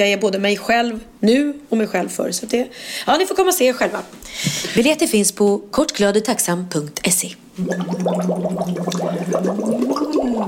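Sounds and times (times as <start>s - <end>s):
speech: 0.0s - 10.4s
bubbles blown into water through a straw: 7.6s - 10.4s.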